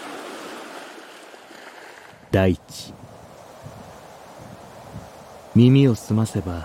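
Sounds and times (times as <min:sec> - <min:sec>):
ocean surf breaking waves: 0:00.0 - 0:04.4
speech: 0:02.3 - 0:03.0, 0:05.6 - 0:06.6.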